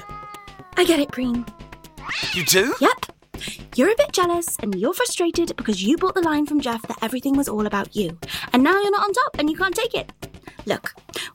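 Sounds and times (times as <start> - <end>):
cat meowing in distress: 0.0 - 2.8
speech: 0.8 - 11.0.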